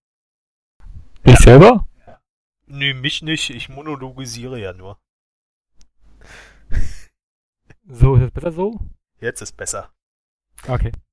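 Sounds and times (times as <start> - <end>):
speech: 1.2 - 1.9, 2.7 - 5.0, 6.3 - 7.0, 7.9 - 10.0, 10.6 - 11.1
loud breath exhaled into a microphone: 6.1 - 7.2.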